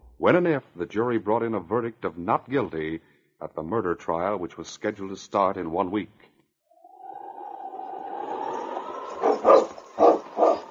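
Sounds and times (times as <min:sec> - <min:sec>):
speech: 0:00.2 - 0:06.3
steady drawn-out whining tone: 0:06.8 - 0:10.6
team of sled huskies barking: 0:08.8 - 0:10.6.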